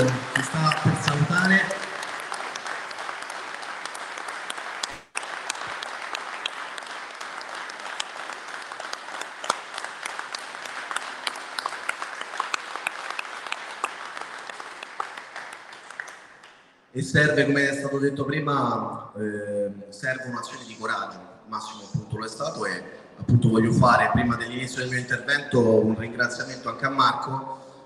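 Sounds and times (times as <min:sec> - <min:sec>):
audience applauding: 0:00.0 - 0:16.8
speech: 0:00.1 - 0:01.9, 0:17.0 - 0:27.6.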